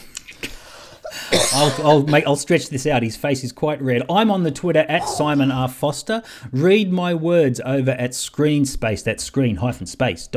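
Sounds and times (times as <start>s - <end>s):
stifled cough: 1.1s - 2.3s
speech: 1.5s - 10.3s.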